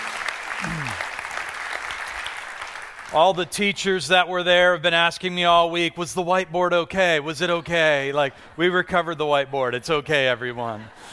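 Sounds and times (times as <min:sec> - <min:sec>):
audience applause: 0:00.0 - 0:03.3
speech: 0:03.1 - 0:11.1.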